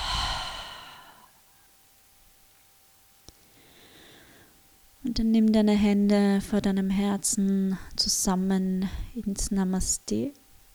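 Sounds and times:
long soft exhale through open lips during a guided breathing exercise: 0.0s - 1.3s
speech: 5.2s - 10.4s.

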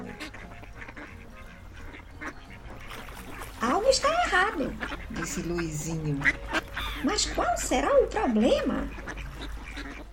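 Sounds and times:
flock of ducks quacking: 0.0s - 10.1s
flock of geese honking: 0.0s - 10.1s
ducks and geese flapping wings as they fly off: 2.2s - 7.8s, 8.4s - 10.1s
speech: 3.9s - 9.0s.

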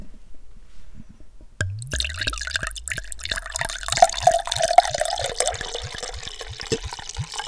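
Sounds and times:
wine pouring from a bottle into a glass: 1.6s - 7.4s.

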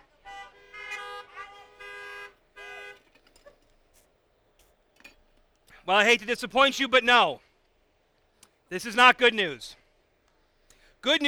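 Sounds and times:
car horns honking: 0.0s - 3.3s
speech: 5.8s - 7.5s, 8.7s - 9.8s, 11.0s - 11.2s.

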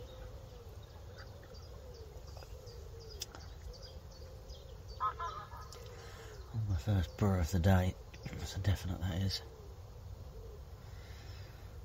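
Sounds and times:
geese calling as they fly past a fishing spot: 5.0s - 6.1s
speech: 6.8s - 9.5s.

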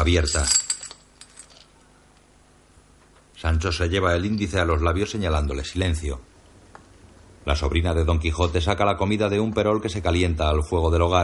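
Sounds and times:
speech: 0.0s - 0.6s, 3.4s - 6.3s, 7.4s - 11.2s
gold coins poured into a woman's hands: 0.0s - 1.8s.

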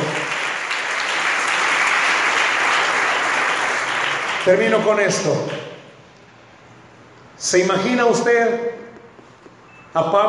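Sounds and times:
crowd applauding: 0.0s - 5.0s
speech: 4.5s - 5.7s, 7.4s - 8.8s, 10.0s - 10.2s.

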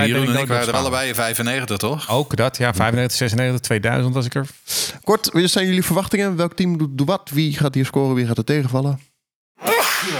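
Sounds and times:
speech: 0.0s - 9.1s
sneeze: 9.6s - 10.1s.

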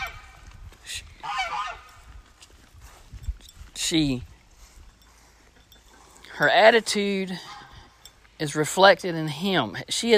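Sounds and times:
goose honking: 0.0s - 0.4s, 1.2s - 2.0s, 7.3s - 7.8s
speech: 3.9s - 4.3s, 6.4s - 7.5s, 8.4s - 10.1s.

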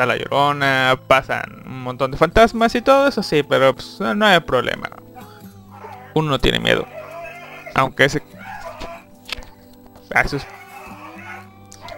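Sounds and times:
speech: 0.0s - 5.0s, 6.1s - 7.0s, 7.8s - 8.5s, 10.1s - 10.6s
dog barking at night: 5.7s - 6.1s, 6.8s - 7.8s, 8.4s - 9.0s, 10.4s - 11.9s.

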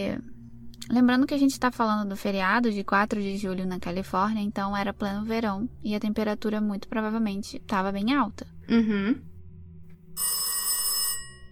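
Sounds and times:
speech: 0.0s - 9.3s, 10.2s - 10.4s
low hum: 0.0s - 11.5s
telephone bell ringing: 10.2s - 11.5s.

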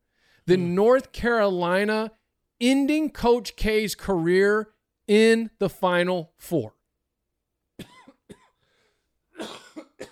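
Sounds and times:
speech: 0.5s - 6.8s
person coughing harshly: 7.8s - 8.6s, 9.3s - 10.1s.

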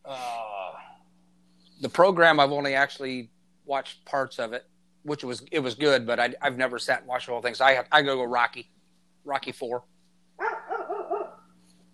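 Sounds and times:
low hum: 0.0s - 11.9s
speech: 1.8s - 9.9s
dog barking: 10.4s - 11.5s.

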